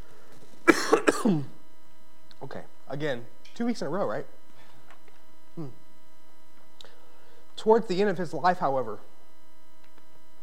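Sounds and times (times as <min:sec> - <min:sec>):
throat clearing: 0:00.7 - 0:01.5, 0:05.6 - 0:05.8
speech: 0:01.2 - 0:01.6, 0:02.4 - 0:04.4, 0:05.6 - 0:05.8, 0:07.6 - 0:09.1.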